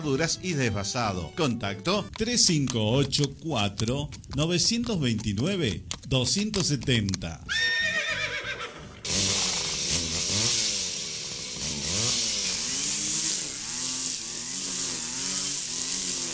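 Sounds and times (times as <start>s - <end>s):
speech: 0.0s - 7.7s
chainsaw engine running: 0.0s - 16.3s
horse whinnying: 5.1s - 9.9s.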